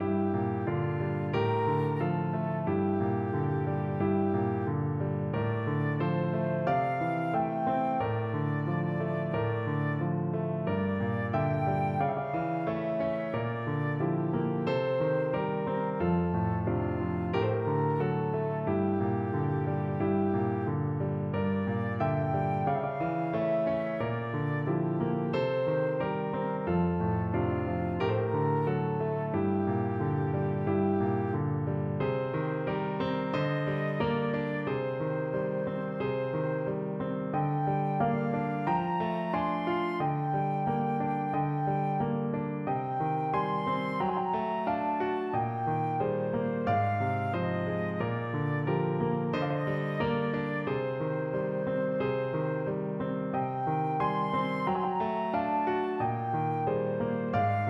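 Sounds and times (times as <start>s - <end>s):
flute melody: 0.0s - 57.6s.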